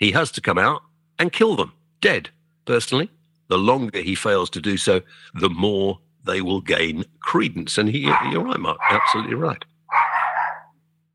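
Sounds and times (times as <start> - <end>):
speech: 0.0 - 9.7
faint steady electrical hum: 0.0 - 11.1
dog barking: 8.0 - 10.8.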